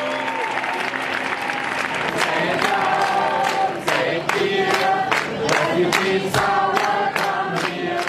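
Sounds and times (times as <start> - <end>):
people cheering and shouting on train station platforms: 0.0 - 3.6
large crowd clapping on train station platforms welcoming refugees: 0.0 - 8.0.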